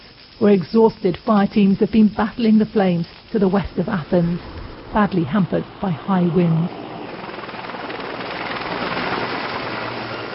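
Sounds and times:
speech: 0.4 - 6.8
firefighting helicopter rotor and engine roaring: 3.6 - 10.3.

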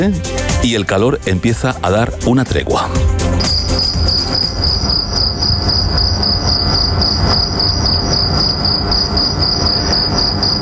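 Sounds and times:
speech: 0.0 - 3.5
cricket chirping at night: 3.4 - 10.6
soft rumble of nighttime outdoor noise: 3.6 - 10.6.

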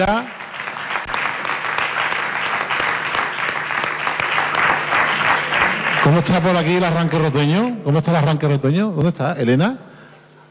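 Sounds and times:
speech: 0.0 - 0.4, 6.1 - 9.9
audience applause: 0.0 - 7.7.

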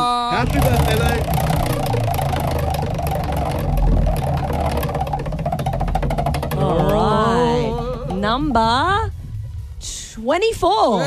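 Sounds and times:
prize wheel spinning: 0.3 - 9.1
speech: 0.4 - 2.0, 8.4 - 9.2, 9.8 - 11.0.

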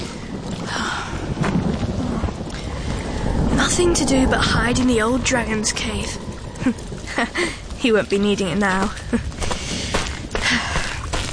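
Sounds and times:
low thunder rumbling: 0.0 - 10.3
steady rain pouring down: 0.0 - 11.2
speech: 3.8 - 9.3.

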